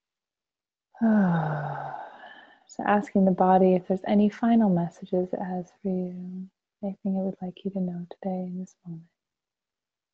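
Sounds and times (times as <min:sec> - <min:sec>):
speech: 0:01.0 - 0:01.7, 0:02.7 - 0:09.1
long voiced exhale during a guided breathing relaxation exercise: 0:01.0 - 0:02.7.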